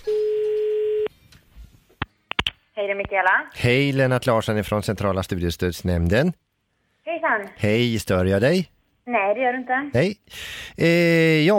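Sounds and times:
telephone ringback tone: 0.0 - 1.1
sharp clicks: 2.0 - 2.6
speech: 2.8 - 6.4, 7.1 - 11.5.

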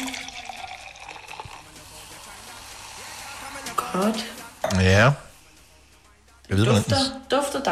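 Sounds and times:
foaming drink poured into a wine glass: 0.0 - 3.1
speech: 4.0 - 5.2, 6.5 - 7.6.

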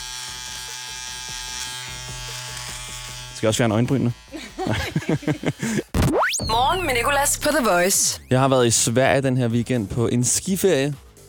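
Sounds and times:
electric shaver buzzing removing facial hair: 0.0 - 5.9
speech: 3.4 - 11.1
laughter: 4.3 - 6.0.

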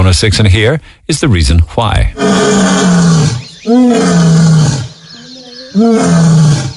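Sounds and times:
speech: 0.0 - 4.8, 5.8 - 6.6
lion roaring: 2.2 - 5.0, 5.6 - 6.7.

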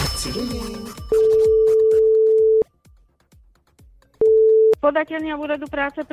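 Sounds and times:
speech: 0.2 - 1.7, 4.8 - 6.1
steady electronic telephone ringback tone: 1.0 - 2.6.

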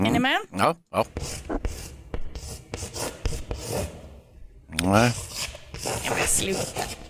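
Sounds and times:
speech: 0.2 - 1.6, 4.7 - 5.3, 5.9 - 7.0
chalk drawing on a slate tablet: 1.0 - 4.1, 4.9 - 7.0.

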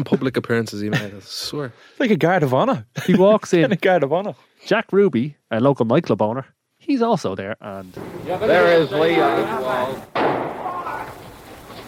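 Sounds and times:
speech: 0.0 - 10.6
gunshot in the basement of a city police headquarters: 10.1 - 11.2.

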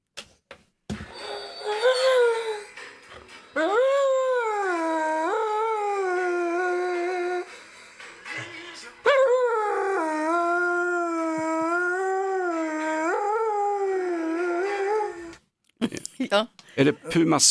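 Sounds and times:
faint TV music: 1.0 - 15.3
dog howling in long wavering tuneful notes along to TV music: 1.2 - 2.7, 3.6 - 7.5, 9.0 - 15.4
speech: 15.8 - 17.4.

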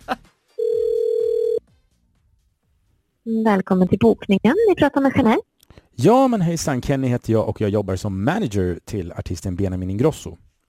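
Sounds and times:
ringback tone on an outgoing phone call to a hotel in Kalmar: 0.6 - 1.6
speech: 3.3 - 10.5.

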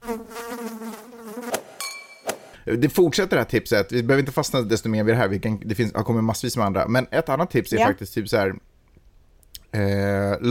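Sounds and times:
fly buzzing: 0.0 - 1.9
speech: 2.7 - 8.7, 9.7 - 10.4.

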